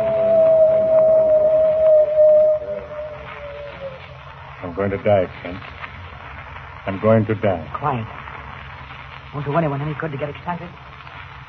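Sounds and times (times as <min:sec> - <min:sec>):
coyote howling: 0:00.0 - 0:04.1
faint hiss: 0:00.0 - 0:11.4
speech: 0:04.8 - 0:05.8, 0:06.8 - 0:08.2, 0:09.3 - 0:10.8.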